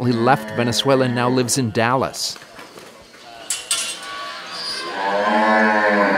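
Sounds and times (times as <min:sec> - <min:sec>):
cow mooing on a dairy farm in Venezuela at milking time: 0:00.0 - 0:01.6, 0:03.8 - 0:06.1
speech: 0:00.0 - 0:02.5
faint farm ambience on a dairy farm in Venezuela: 0:00.0 - 0:06.1
sharp metallic clanks: 0:03.4 - 0:04.6.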